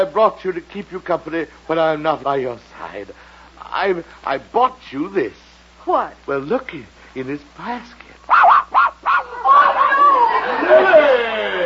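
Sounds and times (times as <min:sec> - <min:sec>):
speech: 0:00.0 - 0:08.4
small dog yapping: 0:08.3 - 0:10.3
overlapping voices chattering and laughing: 0:09.2 - 0:11.6.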